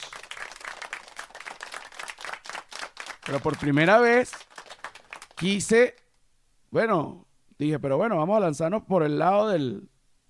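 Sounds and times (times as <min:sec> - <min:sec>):
crowd clapping: 0:00.0 - 0:05.8
speech: 0:03.2 - 0:04.5, 0:05.4 - 0:06.0, 0:06.7 - 0:10.2.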